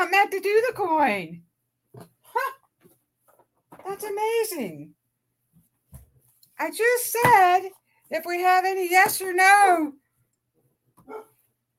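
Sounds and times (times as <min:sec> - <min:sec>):
speech: 0:00.2 - 0:02.6, 0:03.8 - 0:05.0, 0:06.6 - 0:10.0, 0:11.1 - 0:11.3
dog bark: 0:11.0 - 0:11.4.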